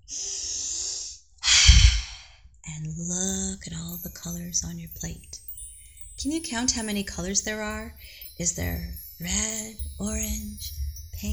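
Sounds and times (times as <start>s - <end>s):
deep breath during a guided relaxation exercise: 0.1s - 2.5s
speech: 2.7s - 5.4s, 6.2s - 11.3s.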